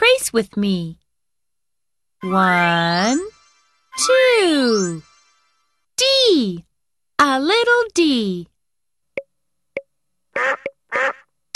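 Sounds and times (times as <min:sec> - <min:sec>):
speech: 0:00.3 - 0:01.0, 0:02.2 - 0:03.3, 0:04.0 - 0:05.1, 0:06.0 - 0:08.5, 0:10.4 - 0:11.2
duck quacking: 0:10.3 - 0:11.3.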